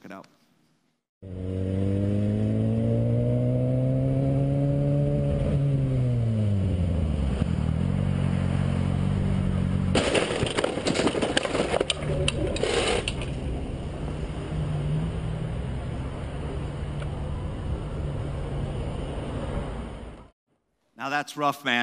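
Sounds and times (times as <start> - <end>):
speech: 0.1 - 0.4, 21.3 - 21.8
motorcycle engine humming in traffic: 1.2 - 10.2, 11.9 - 20.3
steady road rumble: 1.2 - 20.4
motorcycle crashing and scraping under a truck: 9.9 - 13.4.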